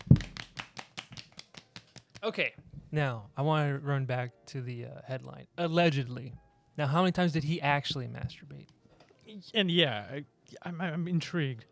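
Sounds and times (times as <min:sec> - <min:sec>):
soft polite hand clapping: 0:00.0 - 0:02.3
speech: 0:02.2 - 0:11.7.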